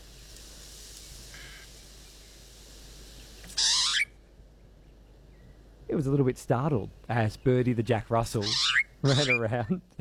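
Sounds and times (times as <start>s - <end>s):
pied butcherbird calling inside a house: 3.5s - 4.2s, 8.4s - 9.4s
speech: 5.9s - 9.9s.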